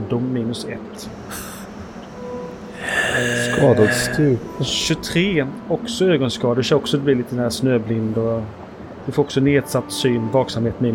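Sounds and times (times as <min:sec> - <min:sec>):
speech: 0:00.1 - 0:01.6, 0:02.8 - 0:10.9
voice imitating wheezing breathing of a throat damaged by the cold: 0:01.0 - 0:04.6.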